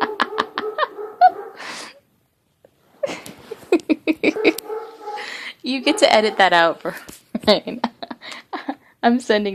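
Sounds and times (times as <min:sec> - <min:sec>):
dogs barking in overlapping bursts: 0:00.0 - 0:01.8, 0:04.2 - 0:06.8
speech: 0:05.7 - 0:07.9, 0:09.0 - 0:09.5.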